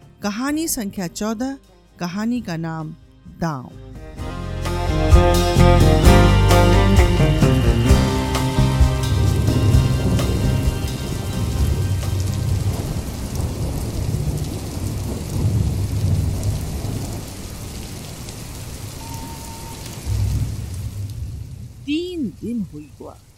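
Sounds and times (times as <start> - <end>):
speech: 0.2 - 3.8, 4.9 - 6.7, 22.5 - 23.3
steady heavy rain pouring down: 4.7 - 23.3
low rumbles of thunder: 6.0 - 23.3.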